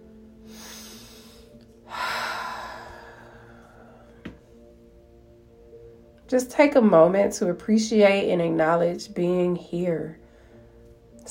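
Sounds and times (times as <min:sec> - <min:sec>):
long loud exhale through the mouth: 0:00.5 - 0:03.8
deep steady inhale through the nose: 0:00.5 - 0:04.1
speech: 0:06.3 - 0:10.2.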